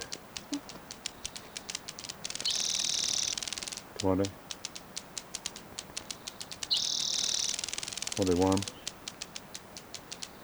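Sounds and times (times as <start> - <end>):
faint ticks and clicks: 0.0 - 10.4
grasshopper flying by with rattling wings: 0.0 - 10.4
speech: 4.0 - 4.4, 8.2 - 8.8.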